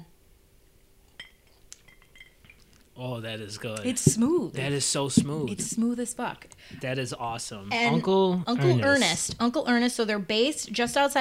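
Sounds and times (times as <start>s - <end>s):
glasses clinking in a toast: 1.2s - 2.7s
speech: 3.0s - 11.1s.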